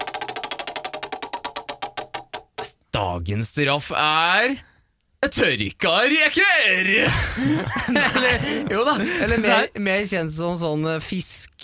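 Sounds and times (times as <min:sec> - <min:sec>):
prize wheel being spun with ratcheting clicks: 0:00.0 - 0:02.3
speech: 0:02.6 - 0:11.6
laughter: 0:06.8 - 0:09.7.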